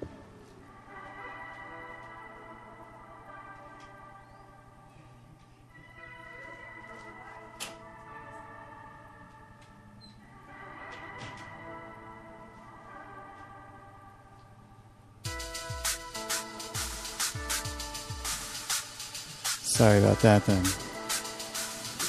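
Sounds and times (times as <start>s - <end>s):
soft music: 0.0s - 22.0s
speech: 19.8s - 20.8s.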